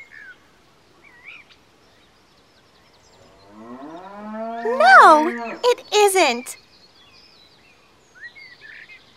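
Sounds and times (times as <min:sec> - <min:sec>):
cow mooing: 0:03.4 - 0:05.6
speech: 0:04.6 - 0:06.6.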